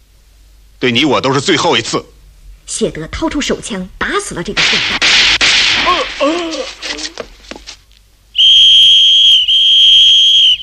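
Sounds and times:
speech: 0.8 - 2.1, 2.7 - 5.2
whistle blast blown by a captain as a signal in a radio drama: 8.4 - 10.6.

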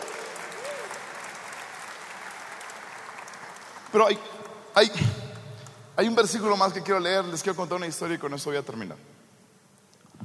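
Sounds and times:
audience applause for a pianist: 0.0 - 5.4
speech: 3.9 - 5.2, 6.0 - 9.1.

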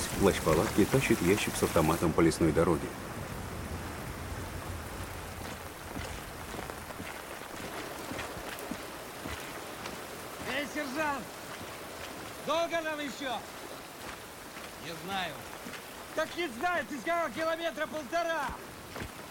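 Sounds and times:
heavy rain pouring on a forest road at dusk: 0.0 - 19.2
speech: 0.2 - 3.2, 16.8 - 18.7.

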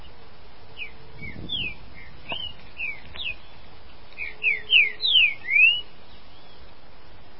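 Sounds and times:
green-winged saltator singing slurred whistled notes: 0.8 - 3.6, 4.2 - 6.7.

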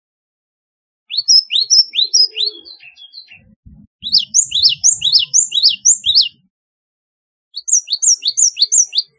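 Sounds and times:
Java sparrow song: 1.1 - 6.5, 7.6 - 9.1.

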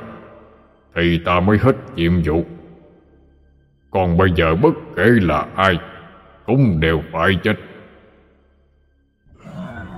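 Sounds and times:
speech: 1.0 - 2.6, 3.9 - 5.9, 6.5 - 7.7
monster's deep rough roar: 9.3 - 9.9.

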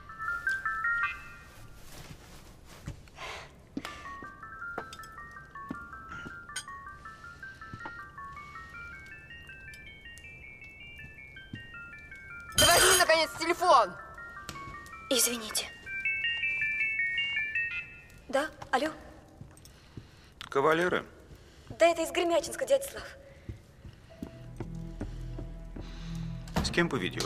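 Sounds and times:
mobile phone ringtone with stepped electronic melody: 0.0 - 2.0, 3.9 - 18.5
speech: 13.3 - 14.0, 15.1 - 15.8, 18.3 - 19.0, 20.6 - 21.1, 21.8 - 23.2, 26.8 - 27.2.

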